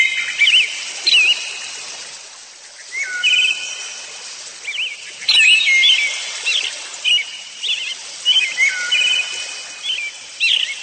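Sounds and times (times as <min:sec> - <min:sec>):
bird song of high thin chirps and twittering whistles: 0:00.0 - 0:01.7, 0:03.0 - 0:03.8, 0:04.7 - 0:10.8.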